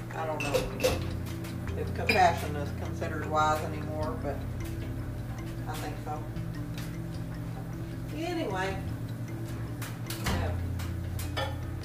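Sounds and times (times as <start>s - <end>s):
low steady hum: 0.0s - 11.8s
glassware and kitchen items clinking and knocking while rummaging for glass tea jar: 0.4s - 1.2s, 1.9s - 2.5s, 11.2s - 11.7s
speech: 2.0s - 4.7s, 5.7s - 6.6s, 8.2s - 8.9s.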